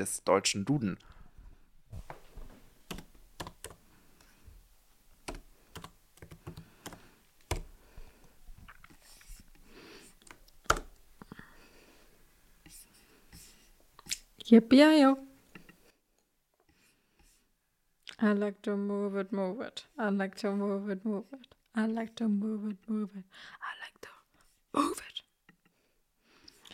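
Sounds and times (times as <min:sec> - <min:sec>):
speech: 0:00.0 - 0:01.2, 0:14.5 - 0:15.3, 0:18.2 - 0:23.8, 0:24.7 - 0:25.1
typing on a computer keyboard: 0:02.9 - 0:03.8, 0:05.2 - 0:07.7, 0:10.2 - 0:10.9.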